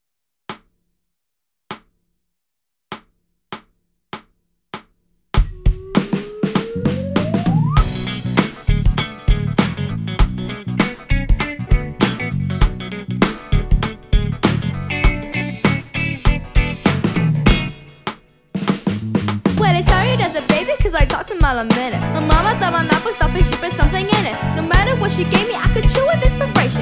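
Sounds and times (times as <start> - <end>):
concert backing track music: 5.4 - 26.8.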